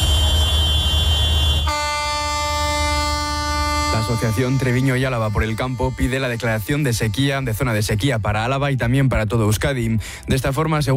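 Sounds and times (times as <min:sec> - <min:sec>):
dozens of tractors honking horns at a farmers' drought protest: 0:00.0 - 0:08.0
speech: 0:04.1 - 0:10.9.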